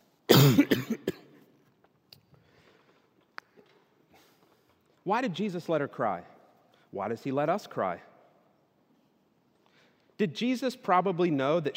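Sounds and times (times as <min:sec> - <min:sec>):
person coughing with rough hacks: 0:00.3 - 0:01.4
speech: 0:00.4 - 0:01.0, 0:05.0 - 0:06.3, 0:06.9 - 0:08.1, 0:10.2 - 0:11.7.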